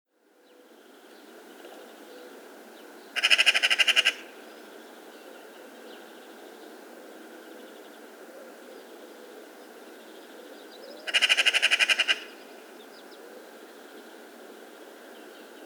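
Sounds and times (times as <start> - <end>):
Eurasian magpie Pica pica harsh rattling chatter: 3.2 - 4.3, 11.1 - 12.4.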